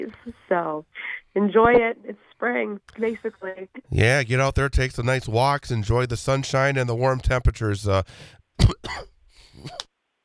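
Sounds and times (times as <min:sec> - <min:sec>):
speech: 0:00.0 - 0:09.9
raspy exhale: 0:08.1 - 0:08.4
person coughing harshly: 0:08.6 - 0:09.8.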